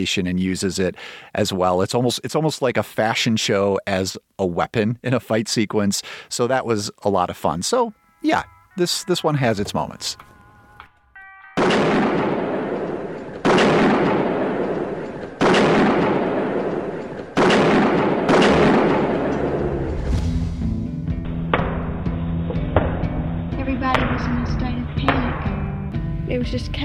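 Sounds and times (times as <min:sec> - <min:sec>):
speech: 0:00.0 - 0:10.3, 0:26.5 - 0:26.8
tonal hum: 0:07.9 - 0:11.6, 0:18.8 - 0:26.5
gunfire during a police shootout: 0:11.6 - 0:20.1.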